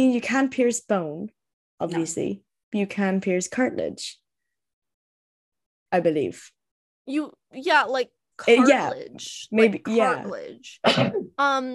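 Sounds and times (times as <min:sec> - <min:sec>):
speech: 0:00.0 - 0:04.2, 0:05.9 - 0:11.7
single quick sneeze: 0:10.8 - 0:11.2.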